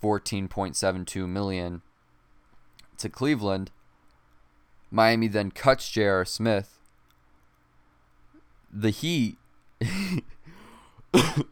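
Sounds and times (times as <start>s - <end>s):
speech: 0.0s - 1.9s, 3.0s - 3.8s, 4.9s - 6.8s, 8.7s - 10.4s, 11.1s - 11.4s
person coughing harshly: 9.8s - 10.4s, 11.2s - 11.4s.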